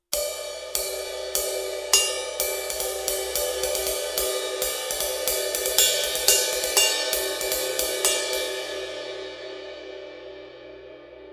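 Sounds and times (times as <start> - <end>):
classic 20-inch ride cymbal: 0.0 - 11.1.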